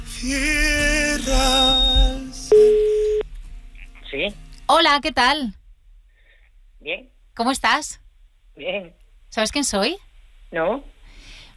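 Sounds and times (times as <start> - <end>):
speech: 0.2 - 2.2, 4.1 - 5.6, 6.8 - 8.0, 8.6 - 10.9
telephone tone of an outgoing call placed from a radio studio: 1.4 - 3.2.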